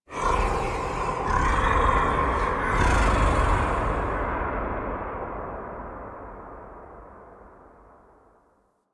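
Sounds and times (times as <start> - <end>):
sky ambience: 0.0 - 8.6.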